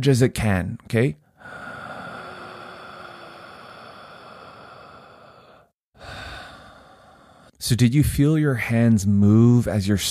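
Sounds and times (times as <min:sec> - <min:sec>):
speech: 0:00.0 - 0:01.6, 0:07.7 - 0:10.0
deep breathing into the stomach: 0:01.2 - 0:07.6.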